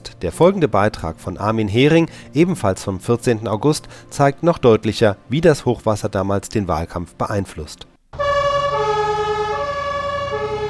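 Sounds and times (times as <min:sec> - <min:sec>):
speech: 0:00.2 - 0:08.2
warning sirens wailing during a flood disaster in Saxony Germany: 0:08.2 - 0:10.6.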